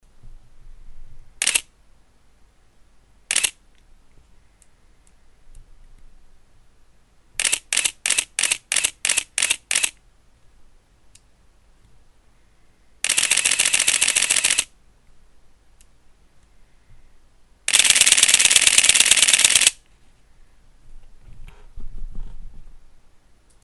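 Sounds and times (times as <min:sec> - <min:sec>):
Canon EOS-1V film camera shutter: 0:01.4 - 0:01.7, 0:03.3 - 0:03.6, 0:07.4 - 0:10.0, 0:13.0 - 0:14.7, 0:17.7 - 0:19.8.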